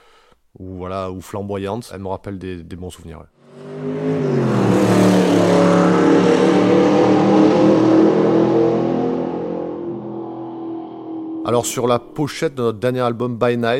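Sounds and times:
speech: 0.6 - 4.4, 11.5 - 13.7
old Seat Ibiza car engine revving: 3.4 - 12.5.

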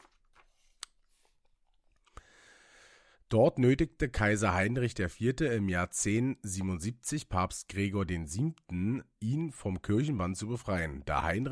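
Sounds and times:
paper pages being turned: 0.0 - 1.3
speech: 3.3 - 11.5.

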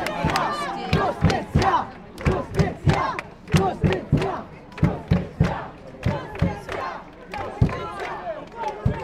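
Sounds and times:
large angry protest crowd outside Parliament in Malta chanting in unison: 0.0 - 9.0.

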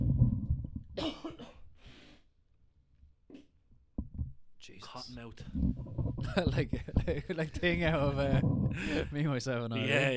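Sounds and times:
person coughing up phlegm: 1.0 - 1.7
person breathing quietly: 1.8 - 2.3, 8.7 - 9.2
speech: 4.7 - 10.1.

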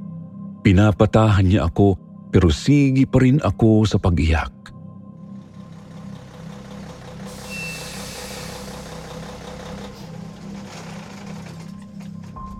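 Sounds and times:
speech: 0.6 - 4.6
heavy truck engine rumbling: 5.3 - 12.5.

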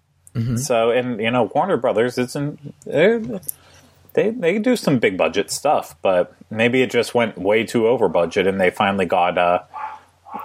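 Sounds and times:
speech: 0.4 - 9.7
dog barks: 9.7 - 10.4.

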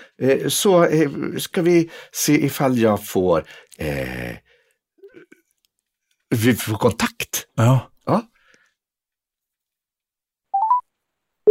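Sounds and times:
speech: 0.2 - 4.5, 6.3 - 8.3
rising electronic phone tones as a call is placed: 10.6 - 10.8.

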